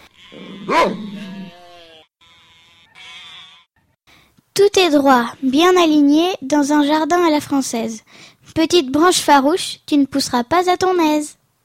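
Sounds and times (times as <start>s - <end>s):
flock of sheep bleating: 0.0s - 3.8s
speech: 0.3s - 1.1s, 4.7s - 11.4s
sheepdog barking while chasing a stray sheep: 0.5s - 1.3s.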